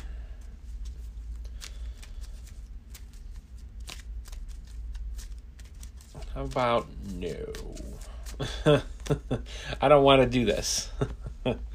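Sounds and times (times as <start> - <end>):
playing cards searched through by hand in an encounter deck and discard pile: 0.0 - 9.2
speech: 6.4 - 11.7.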